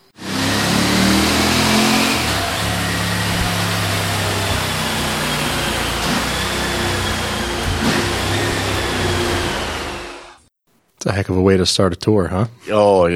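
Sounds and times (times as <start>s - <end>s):
V4 sport touring motorcycle engine revving on a dyno: 0.0s - 10.5s
speech: 11.0s - 13.1s.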